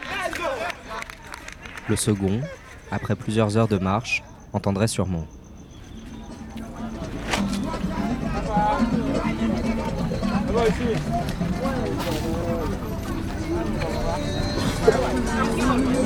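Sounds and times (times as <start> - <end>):
laughter: 0.0 - 4.0, 6.6 - 16.0
speech: 1.9 - 5.4, 10.6 - 11.6
black zebra hooves clip-clopping on a road pulling a wooden two-wheeled cart: 5.9 - 16.0.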